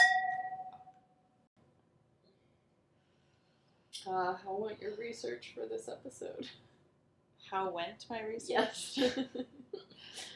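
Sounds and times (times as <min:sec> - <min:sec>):
glasses clinking in a toast: 0:00.0 - 0:00.9
speech: 0:04.0 - 0:06.7, 0:07.4 - 0:10.3.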